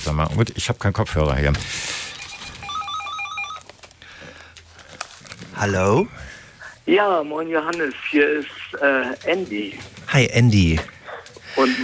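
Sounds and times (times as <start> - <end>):
speech: 0.0 - 2.0, 5.6 - 6.3, 6.9 - 11.0, 11.6 - 11.8
telephone ringing with a warbling electronic trill: 2.0 - 3.7.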